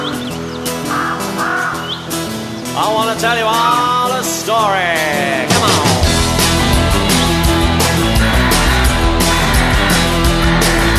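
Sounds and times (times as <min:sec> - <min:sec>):
crow cawing: 0:00.1 - 0:02.5, 0:05.8 - 0:10.9
speech: 0:02.8 - 0:06.0.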